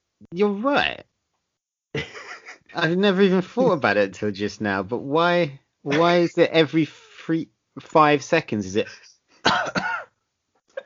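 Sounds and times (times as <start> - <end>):
speech: 0.2 - 1.1, 2.8 - 9.8
laughter: 2.0 - 3.9, 5.9 - 6.5
person coughing harshly: 9.4 - 10.1
throat clearing: 9.4 - 10.1.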